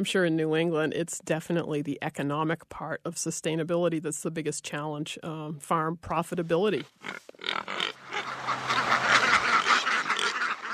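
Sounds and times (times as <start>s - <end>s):
speech: 0.0s - 7.8s
cluster of ducks quacking among pigs on a farm: 7.0s - 10.7s.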